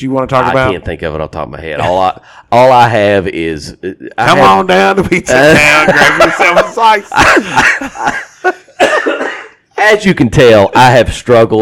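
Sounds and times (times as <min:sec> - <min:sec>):
speech: 0:00.0 - 0:11.6
laughter: 0:04.3 - 0:09.2
person coughing with a heavy chesty cough: 0:07.1 - 0:09.6.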